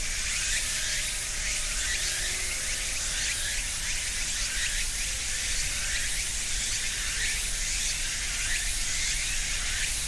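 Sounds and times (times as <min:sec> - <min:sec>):
cicadas and other insects singing in ornamental cherry trees: 0:00.0 - 0:10.0.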